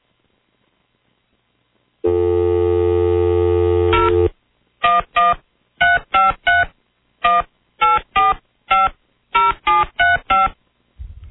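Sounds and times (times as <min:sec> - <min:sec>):
long steady telephone dial tone: 0:02.0 - 0:05.3
telephone touch-tone dialing beeps: 0:04.9 - 0:10.6.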